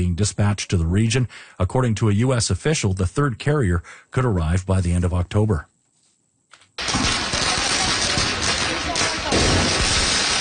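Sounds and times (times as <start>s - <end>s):
speech: 0.0s - 5.7s
firecrackers exploding during street protest: 6.8s - 10.3s.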